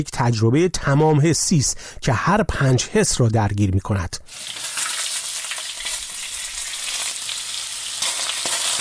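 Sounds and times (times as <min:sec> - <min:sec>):
speech: 0:00.0 - 0:04.8
food frying in a pan: 0:04.3 - 0:08.7.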